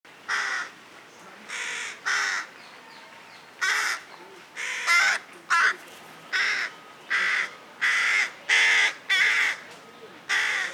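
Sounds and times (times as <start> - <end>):
carrion crow Corvus corone cawing: 0.3 - 0.7, 1.5 - 2.5, 3.6 - 4.0, 4.6 - 5.7, 6.3 - 9.6, 10.3 - 10.7.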